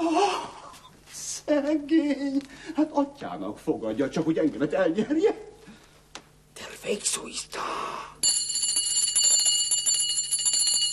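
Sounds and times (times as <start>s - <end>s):
speech: 1.5s - 5.6s, 6.8s - 8.1s
bell ringing in a rapid metallic trill to summon someone: 8.2s - 10.9s.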